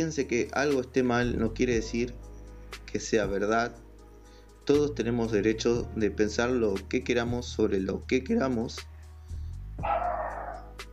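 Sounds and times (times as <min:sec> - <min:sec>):
speech: 0:00.0 - 0:03.8, 0:04.7 - 0:08.9, 0:09.8 - 0:10.1
dog barking at night, muffled: 0:09.8 - 0:10.7.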